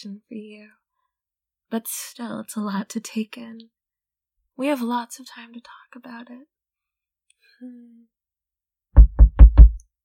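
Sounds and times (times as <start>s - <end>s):
speech: 0.0s - 0.8s, 1.7s - 3.8s, 4.6s - 6.6s, 7.6s - 8.2s
firm knocking on a door: 9.0s - 9.8s.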